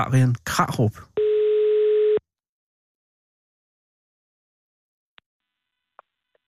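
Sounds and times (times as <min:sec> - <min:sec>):
speech: 0:00.0 - 0:01.1
telephone ringing tone during outgoing call: 0:01.2 - 0:02.2.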